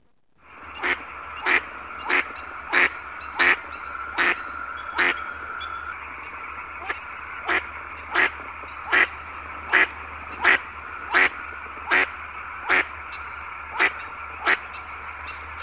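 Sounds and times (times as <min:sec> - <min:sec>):
pato colorado duck: 0:00.8 - 0:05.2, 0:06.8 - 0:09.1, 0:09.7 - 0:12.9.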